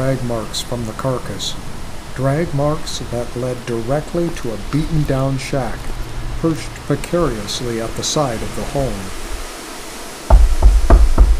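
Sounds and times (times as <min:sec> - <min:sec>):
speech: 0:00.0 - 0:09.2
warden knocking on a wooden door: 0:10.3 - 0:11.3.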